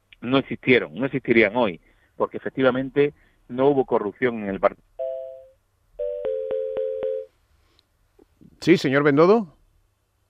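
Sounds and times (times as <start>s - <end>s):
speech: 0.2s - 5.0s, 8.6s - 9.6s
phone line tone after a dropped call: 5.0s - 7.3s.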